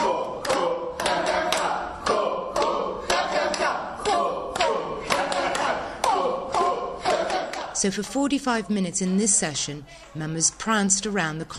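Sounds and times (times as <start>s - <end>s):
group of voices chanting during a laughter exercise session: 0.0s - 8.2s
hand claps: 0.4s - 7.7s
speech: 7.8s - 11.5s.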